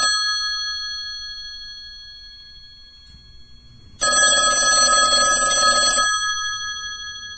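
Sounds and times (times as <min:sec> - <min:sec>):
classical long single ring: 0:00.2 - 0:04.7, 0:06.0 - 0:07.3.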